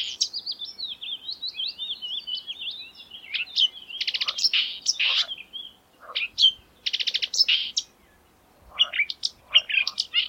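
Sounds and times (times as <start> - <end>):
marsh warbler singing: 0.0 - 10.2.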